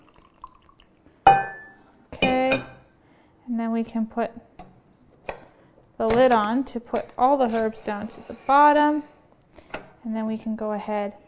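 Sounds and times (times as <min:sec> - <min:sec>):
tea poured through a tea strainer into a glass French press: 0:00.0 - 0:01.1
speech: 0:03.5 - 0:04.5, 0:06.0 - 0:09.1, 0:10.0 - 0:11.2.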